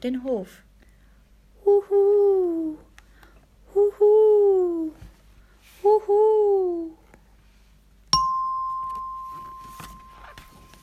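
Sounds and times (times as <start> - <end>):
speech: 0.0 - 0.7, 1.6 - 2.8, 3.8 - 5.0, 5.8 - 7.0
many bells ringing on Easter morning: 8.2 - 10.8.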